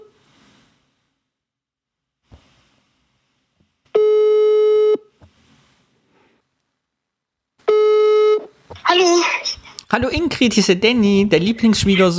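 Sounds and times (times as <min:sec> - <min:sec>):
buzzy telephone ringback tone while placing a call: 0:03.9 - 0:05.0, 0:07.7 - 0:08.4
speech: 0:09.9 - 0:12.1.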